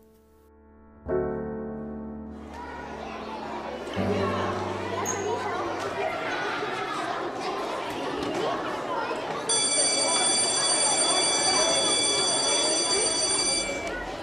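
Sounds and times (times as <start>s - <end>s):
indistinct crowd chatter: 2.2s - 14.2s
electric school bell ringing loudly: 9.5s - 14.2s.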